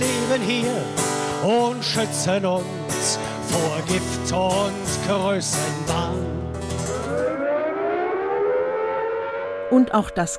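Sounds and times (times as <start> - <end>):
speech: 0.0 - 6.5, 9.7 - 10.3
siren wailing at a protest before a nuclear power plant gate: 6.2 - 10.3.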